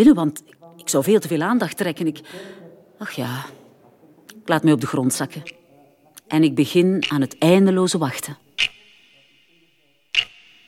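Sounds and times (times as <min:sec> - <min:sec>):
speech: 0:00.0 - 0:03.6, 0:04.5 - 0:05.6, 0:06.3 - 0:08.7
watch ticking with thin metallic ring: 0:04.7 - 0:10.6.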